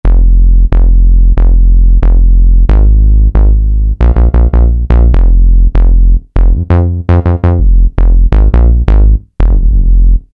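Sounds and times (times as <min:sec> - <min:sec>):
15-inch bass: 0:00.0 - 0:10.3.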